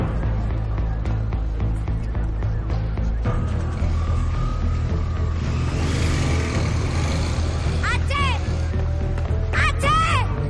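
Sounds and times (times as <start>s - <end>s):
city street traffic roar: 0.0s - 10.4s
motorcycle riding away through city streets: 3.6s - 9.1s.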